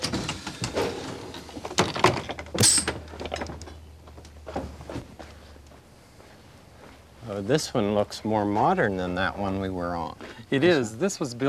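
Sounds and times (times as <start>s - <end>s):
doors of 1949 trolley sliding open: 0.0s - 3.6s
steady low hum: 0.0s - 11.4s
speech: 7.4s - 11.4s.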